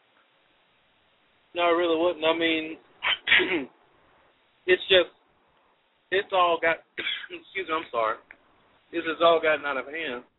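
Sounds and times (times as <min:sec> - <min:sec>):
speech: 0:01.6 - 0:03.8, 0:04.7 - 0:05.2, 0:06.1 - 0:08.3, 0:08.9 - 0:10.3
harsh throat clearing: 0:03.0 - 0:03.7, 0:07.0 - 0:07.5
person coughing: 0:03.0 - 0:03.7, 0:07.0 - 0:07.5
voiced vocal bursts: 0:03.0 - 0:03.7.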